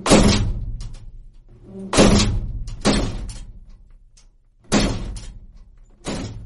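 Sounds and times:
rooftop shed door slamming shut: 0:00.0 - 0:00.8, 0:01.7 - 0:03.6, 0:04.7 - 0:06.4.

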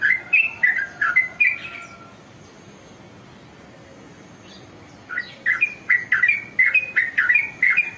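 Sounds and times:
Oriental magpie-robin song: 0:00.0 - 0:02.1, 0:04.4 - 0:07.9.

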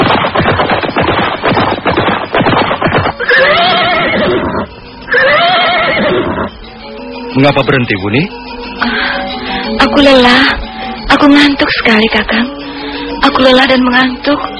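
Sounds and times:
horse hooves clip-clopping at a forest edge: 0:00.0 - 0:05.3
horse whinnying: 0:03.1 - 0:06.6
speech: 0:07.4 - 0:09.0, 0:09.8 - 0:12.6, 0:13.2 - 0:14.5.

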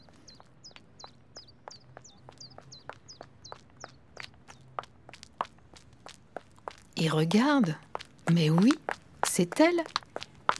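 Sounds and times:
light footsteps hurrying along an alley: 0:00.0 - 0:10.5
speech: 0:07.0 - 0:08.8, 0:09.4 - 0:10.0.

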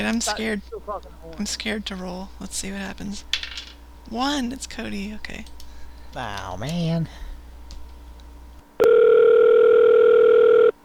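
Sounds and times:
speech: 0:00.0 - 0:07.2
low hum: 0:00.0 - 0:10.8
fake electronic telephone ring tone for a prank call: 0:08.8 - 0:10.8.

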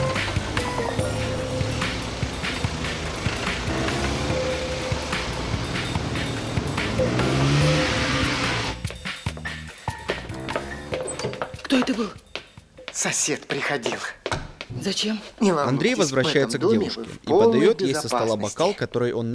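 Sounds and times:
foreign-made car engine rumble arriving on the street: 0:00.0 - 0:08.8
road noise: 0:00.0 - 0:09.6
speech: 0:12.0 - 0:12.2, 0:13.0 - 0:19.3.

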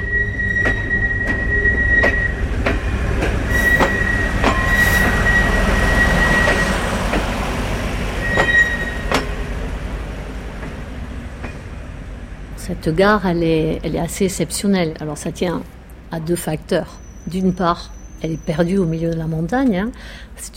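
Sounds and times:
thin high train wheel squeal: 0:00.0 - 0:07.0, 0:08.1 - 0:09.5, 0:16.8 - 0:19.1
continuous rumble of a train rolling at Canfranc mountain station in the Pyrenees: 0:00.0 - 0:20.5
train wheels clacking over rail joints on Spanish-gauge tracks: 0:00.6 - 0:09.5
speech: 0:12.8 - 0:20.5.

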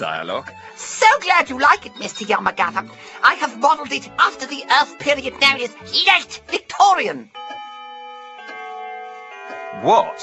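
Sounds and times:
speech: 0:00.0 - 0:07.4, 0:09.8 - 0:10.2
old grandfather clock ticking: 0:00.0 - 0:10.2
sustained ringing tone: 0:01.6 - 0:02.9, 0:07.3 - 0:10.2.

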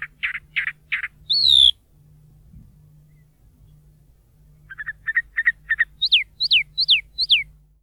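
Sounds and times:
chalk-browed mockingbird singing varied phrases: 0:00.0 - 0:01.8, 0:04.7 - 0:07.5.

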